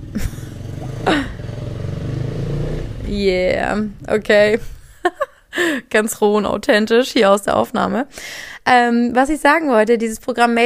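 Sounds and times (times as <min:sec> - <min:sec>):
motorcycle engine passing by outside: 0:00.0 - 0:05.4
speech: 0:00.2 - 0:00.4, 0:03.1 - 0:04.8, 0:05.6 - 0:10.6.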